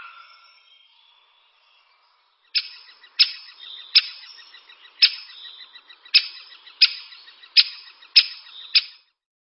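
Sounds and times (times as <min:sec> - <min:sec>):
great spotted woodpecker calling: 0:02.5 - 0:09.1.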